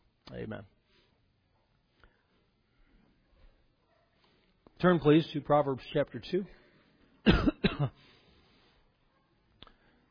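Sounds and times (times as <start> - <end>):
speech: 0.4 - 0.8, 4.8 - 6.6, 7.2 - 8.0
harsh coughs: 7.2 - 8.0
rough throat clearing: 7.2 - 8.0.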